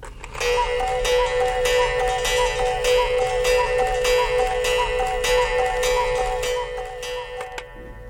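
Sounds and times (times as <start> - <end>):
mechanical cuckoo clock ticking: 0.2 - 8.0.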